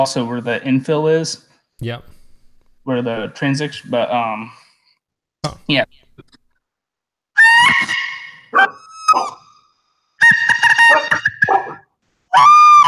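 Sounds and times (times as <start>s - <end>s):
speech: 0.0s - 2.2s, 2.8s - 4.6s, 5.4s - 6.3s, 8.5s - 9.3s
handmade clear translucent bird call mimicking a marsh bird's screech: 7.4s - 12.8s.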